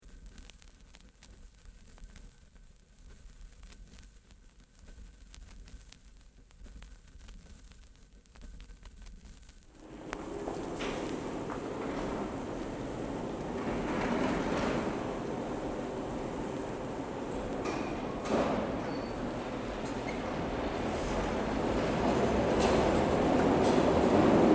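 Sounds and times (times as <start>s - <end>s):
1938 Stock Tube train doors closing: 9.7s - 24.5s.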